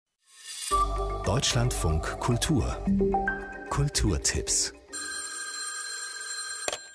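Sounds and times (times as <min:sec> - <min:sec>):
speech: 0:01.3 - 0:04.8
telephone ringing: 0:04.9 - 0:06.9.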